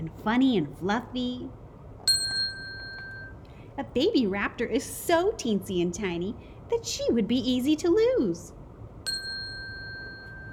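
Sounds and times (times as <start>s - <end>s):
soft hiss: 0.0s - 10.5s
speech: 0.1s - 1.6s, 3.8s - 8.6s
small bell ringing: 2.1s - 3.4s, 9.0s - 10.5s.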